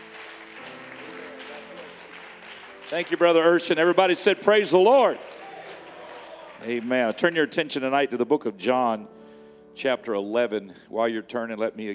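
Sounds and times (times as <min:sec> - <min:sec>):
audience applause welcoming the speaker: 0:00.0 - 0:07.7
speech: 0:02.9 - 0:05.3, 0:06.6 - 0:09.2, 0:09.8 - 0:11.9.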